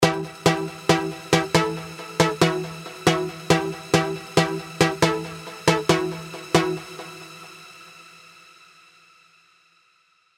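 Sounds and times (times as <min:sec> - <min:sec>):
arpeggio: 0:00.0 - 0:07.3.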